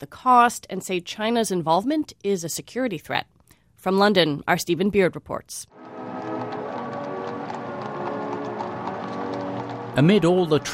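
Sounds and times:
speech: 0:00.0 - 0:05.8, 0:10.0 - 0:10.7
horses' hooves clip-clopping pulling a gilded carriage in London: 0:05.8 - 0:10.7.

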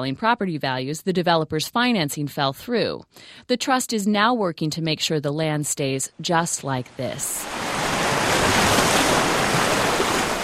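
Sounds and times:
speech: 0:00.0 - 0:07.8
waves breaking on a beach on the Hawaiian island of Oahu: 0:07.2 - 0:10.4.

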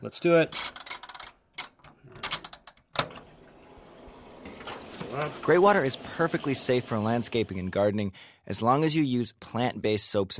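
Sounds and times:
speech: 0:00.0 - 0:00.8, 0:05.1 - 0:10.3
washing machine running with a steady low hum: 0:03.0 - 0:07.8.

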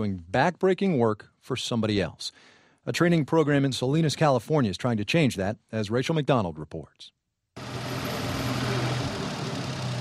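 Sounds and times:
speech: 0:00.0 - 0:07.8
tractor engine idling on a farm in Salinas California: 0:07.6 - 0:09.9.

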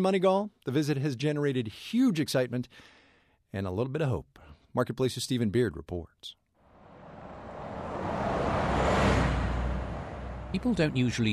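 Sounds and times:
speech: 0:00.0 - 0:06.4, 0:10.5 - 0:11.3
steady traffic roar in a small town: 0:06.7 - 0:11.3
vehicle passing on a road in a small town: 0:06.7 - 0:11.3.

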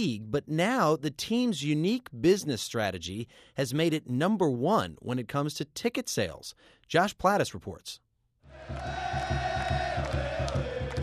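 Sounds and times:
speech: 0:00.0 - 0:08.0
huge crowd cheering at a sold-out soccer match: 0:08.5 - 0:11.0
steady rhythmic thumping: 0:08.6 - 0:11.0.

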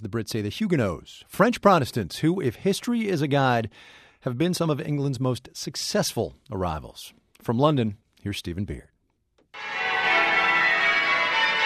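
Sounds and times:
speech: 0:00.0 - 0:08.9
church bells ringing in Spitalfields East London: 0:09.6 - 0:11.6.

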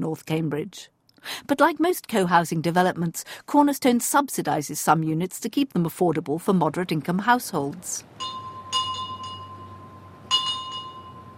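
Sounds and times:
speech: 0:00.0 - 0:08.4
low hum: 0:00.0 - 0:11.3
dinner bell ringing: 0:08.1 - 0:11.3.

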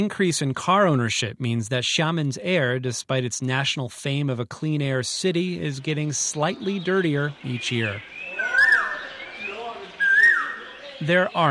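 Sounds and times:
speech: 0:00.0 - 0:08.2, 0:11.0 - 0:11.4
birds singing in a quiet car-free tree-lined alley on an island: 0:05.4 - 0:11.4.

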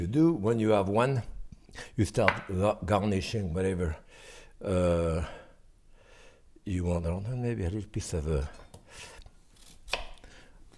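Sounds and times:
speech: 0:00.0 - 0:05.4, 0:06.6 - 0:09.1
knife chopping onion in a kitchen: 0:02.2 - 0:02.6, 0:09.6 - 0:10.2.

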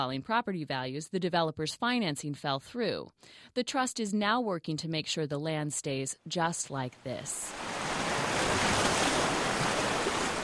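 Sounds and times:
speech: 0:00.0 - 0:07.8
ocean surf breaking on a beach on Oahu: 0:07.3 - 0:10.4.

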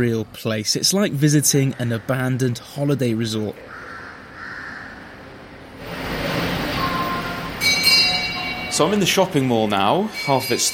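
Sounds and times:
speech: 0:00.0 - 0:03.8, 0:08.8 - 0:10.7
kids' ride-on train rumbling through a mall: 0:05.8 - 0:10.7.

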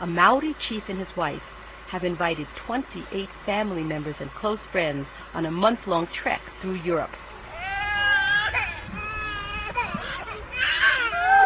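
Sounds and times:
speech: 0:00.0 - 0:07.3
preverbal toddler crying and fussing: 0:07.5 - 0:11.4.

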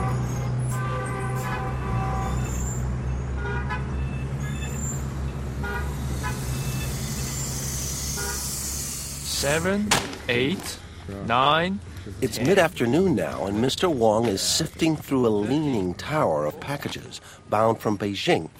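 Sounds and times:
car horns tooting in Beijing traffic: 0:00.0 - 0:07.0, 0:08.1 - 0:08.6
dense city street traffic in Beijing: 0:00.0 - 0:18.5
speech: 0:09.4 - 0:18.5.

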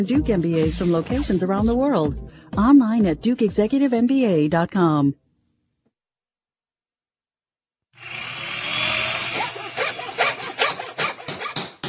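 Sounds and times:
speech: 0:00.0 - 0:05.2
saw cutting wood: 0:08.0 - 0:11.8
hammer blows on wood: 0:09.9 - 0:11.8.

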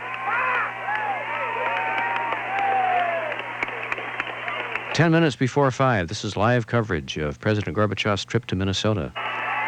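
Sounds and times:
crowd cheering and whooping for a motorcade in Minnesota: 0:00.0 - 0:04.9, 0:09.2 - 0:09.6
scattered sharp handclaps: 0:00.0 - 0:05.0
low constant hum: 0:00.0 - 0:09.4
speech: 0:05.0 - 0:09.2.

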